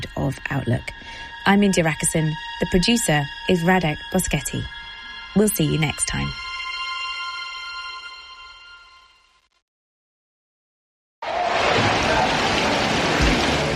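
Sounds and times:
speech: 0.2s - 6.4s
heavy rain during the West African rainy season: 11.2s - 13.7s.

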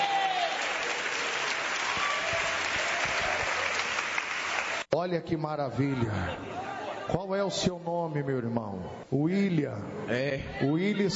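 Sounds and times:
church congregation clapping: 0.0s - 4.9s
speech: 4.9s - 11.1s.

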